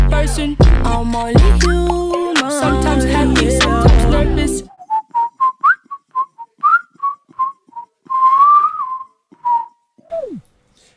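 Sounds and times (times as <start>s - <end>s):
speech: 0.2s - 4.7s
whistled melody in a song's instrumental: 4.7s - 10.4s.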